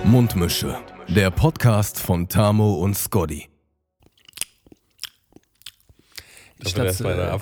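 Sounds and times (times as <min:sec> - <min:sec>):
speech: 0:00.1 - 0:03.5, 0:06.6 - 0:07.3
crunchy bites: 0:04.0 - 0:06.4
loud chewing with wet smacks: 0:04.0 - 0:06.7.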